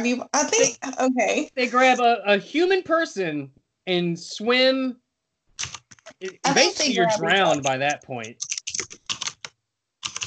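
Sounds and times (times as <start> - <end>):
speech: 0.0 - 5.0, 5.6 - 9.0
laughter: 1.6 - 4.9, 6.2 - 8.2
typing on a computer keyboard: 5.6 - 6.0, 8.3 - 10.2.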